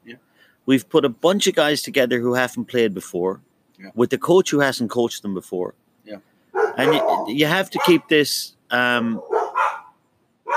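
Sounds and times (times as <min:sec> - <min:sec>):
speech: 0:00.1 - 0:09.4
dogs barking loudly and sharply: 0:06.5 - 0:08.1, 0:09.1 - 0:10.5.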